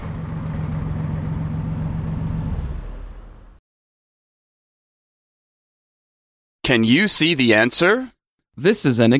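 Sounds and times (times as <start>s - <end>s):
large bus engine idling: 0.0s - 3.6s
speech: 6.7s - 9.1s.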